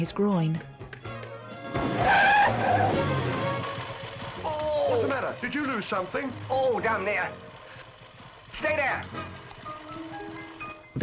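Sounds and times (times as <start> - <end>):
speech: 0.0 - 0.8, 1.7 - 3.3, 4.9 - 7.5, 8.5 - 9.4
motorbike engine: 1.0 - 11.0
motorbike tyres skidding under hard braking: 1.0 - 11.0.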